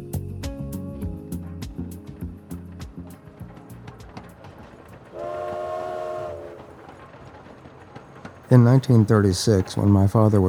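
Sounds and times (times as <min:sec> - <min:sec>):
passenger train rumbling along the rails with wheels clacking: 0:02.1 - 0:10.4
passenger train horn or whistle: 0:05.1 - 0:07.0
speech: 0:08.5 - 0:10.4.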